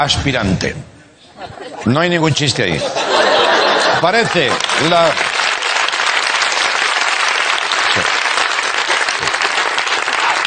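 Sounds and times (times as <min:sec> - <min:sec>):
speech: 0:00.0 - 0:03.3, 0:04.0 - 0:05.4
laughter: 0:01.4 - 0:05.2
studio audience applauding: 0:03.3 - 0:10.4.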